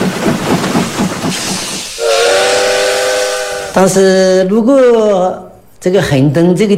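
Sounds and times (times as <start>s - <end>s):
steam train chuffing: 0.0s - 4.2s
steam train whistle: 1.9s - 4.0s
speech: 3.8s - 6.7s.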